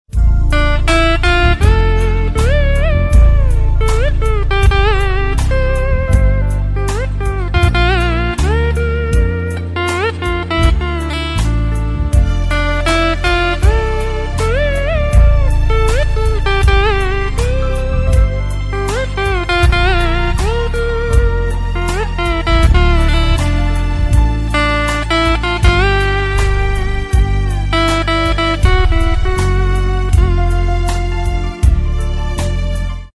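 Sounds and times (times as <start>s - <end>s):
Hindi instrumental music: 0.0s - 33.1s.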